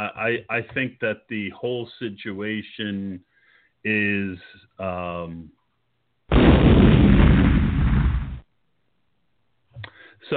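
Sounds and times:
speech: 0:00.0 - 0:05.6, 0:09.8 - 0:10.3
loud explosion sound effect: 0:06.3 - 0:08.4.

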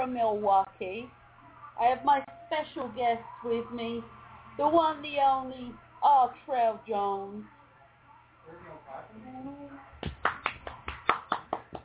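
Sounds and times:
speech: 0:00.0 - 0:01.2, 0:01.8 - 0:07.6, 0:08.5 - 0:09.9
person clapping their hands: 0:10.0 - 0:11.8.

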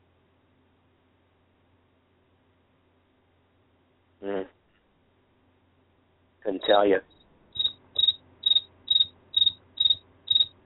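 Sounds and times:
faint low hum: 0:00.0 - 0:10.6
crickets chirping: 0:06.6 - 0:10.6
speech: 0:06.7 - 0:07.2.

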